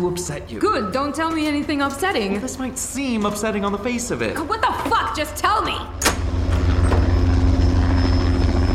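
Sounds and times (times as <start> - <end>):
speech: 0.0 - 6.1
helicopter rotor beating in fast steady low thump: 4.8 - 8.7
constant helicopter engine whine: 5.9 - 8.7.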